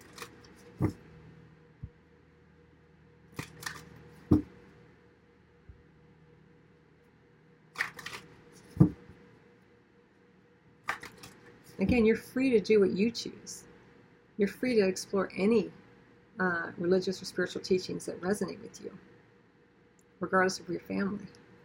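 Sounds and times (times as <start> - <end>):
speech: 0.8 - 1.0, 11.9 - 13.6, 14.4 - 15.8, 16.4 - 19.1, 20.2 - 21.4
tarot cards snapping and flicking as they are drawn from a deck: 3.4 - 4.5, 7.8 - 9.0, 10.9 - 11.5.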